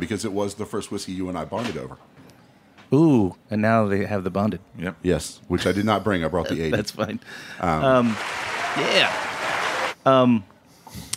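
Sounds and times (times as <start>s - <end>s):
speech: 0.0s - 2.3s, 2.9s - 9.3s, 10.0s - 11.1s
crowd applause: 7.8s - 10.0s.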